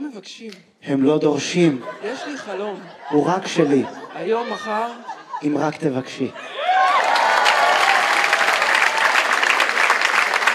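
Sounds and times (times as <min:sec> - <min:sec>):
speech: 0:00.2 - 0:06.6
laughter: 0:01.5 - 0:07.7
audience applause: 0:06.6 - 0:10.5.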